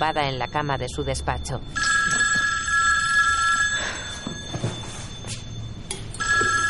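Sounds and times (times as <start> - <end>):
speech: 0.0 - 2.2
home telephone ringing: 0.0 - 6.6.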